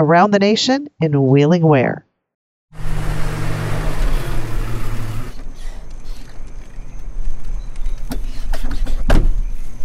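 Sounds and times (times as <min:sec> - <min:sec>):
speech: 0:00.0 - 0:02.0
whirring motor-like rumble: 0:02.8 - 0:08.1
door closing with a solid thud: 0:08.8 - 0:09.4.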